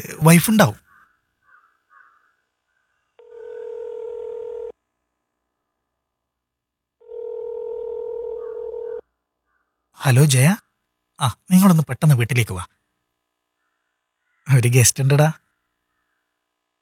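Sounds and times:
speech: 0:00.0 - 0:00.8, 0:10.0 - 0:10.6, 0:11.2 - 0:12.8, 0:14.5 - 0:15.4
telephone ringing tone on the line as a call is placed: 0:03.2 - 0:04.8, 0:07.0 - 0:09.0.

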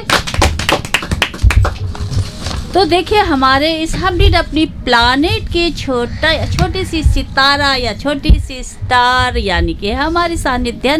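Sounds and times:
group of children clapping: 0:00.0 - 0:01.8
speech: 0:02.8 - 0:10.9.

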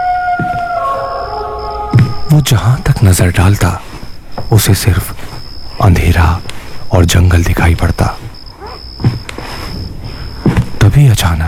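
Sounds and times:
jackals howling in a high-pitched tone: 0:00.0 - 0:03.3
speech: 0:02.3 - 0:03.9, 0:04.5 - 0:08.2, 0:11.0 - 0:11.4.

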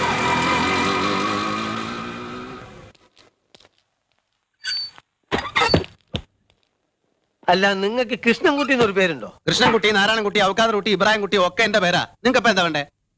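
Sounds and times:
auto rickshaw engine idling: 0:00.0 - 0:02.9
speech: 0:07.5 - 0:13.0.

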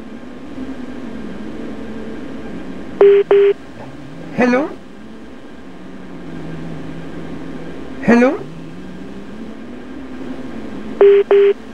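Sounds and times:
incoming telephone call electronic beeps: 0:03.0 - 0:03.6, 0:11.0 - 0:11.6
speech: 0:03.0 - 0:03.7, 0:04.4 - 0:04.8, 0:08.0 - 0:08.5, 0:11.0 - 0:11.7.

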